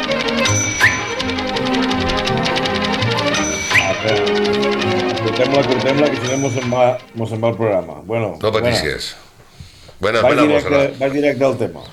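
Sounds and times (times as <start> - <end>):
typewriter keystrokes: 0.0 - 7.6
speech: 5.4 - 9.2, 10.0 - 11.9.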